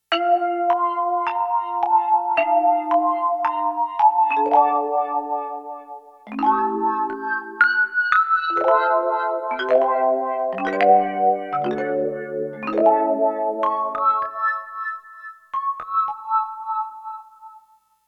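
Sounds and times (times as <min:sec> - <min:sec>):
synthesizer marimba factory preset: 0:00.1 - 0:05.7, 0:06.3 - 0:15.0.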